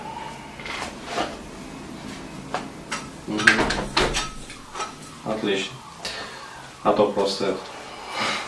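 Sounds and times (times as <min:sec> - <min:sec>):
low steady hum: 0:00.0 - 0:08.2
speech: 0:03.3 - 0:03.5, 0:05.4 - 0:05.8, 0:06.8 - 0:07.7
door being pushed shut with soft knocks and creaks: 0:03.5 - 0:04.9.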